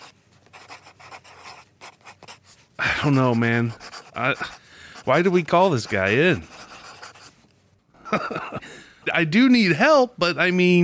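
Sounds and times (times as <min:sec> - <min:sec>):
pencil scratching on paper: 0:00.0 - 0:07.4
speech: 0:03.0 - 0:06.5, 0:08.1 - 0:08.5, 0:09.1 - 0:10.8
laughter: 0:08.0 - 0:08.7.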